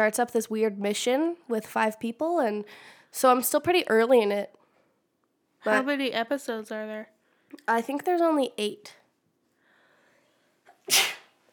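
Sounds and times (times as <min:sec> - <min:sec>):
speech: 0:00.0 - 0:04.6, 0:05.6 - 0:09.0, 0:10.9 - 0:11.2
person sneezing: 0:10.7 - 0:11.4.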